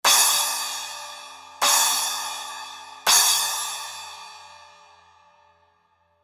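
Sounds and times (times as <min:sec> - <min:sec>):
10 inch Zildjian Flash splash cymbal hits: 0:00.1 - 0:04.8.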